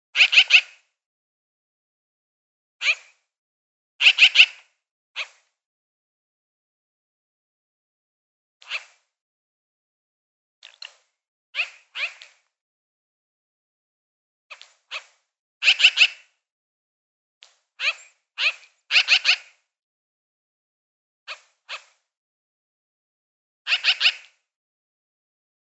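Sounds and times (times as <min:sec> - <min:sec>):
magpie giving scratchy chirps: 0:00.2 - 0:00.7, 0:04.0 - 0:04.6, 0:11.6 - 0:12.3, 0:14.9 - 0:16.3, 0:17.8 - 0:19.5, 0:23.7 - 0:24.3.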